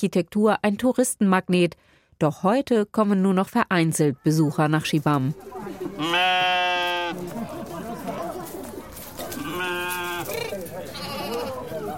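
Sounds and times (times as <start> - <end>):
speech: 0.0 - 7.6
sheep bleating in narrow alleys: 6.0 - 7.2, 9.2 - 11.8.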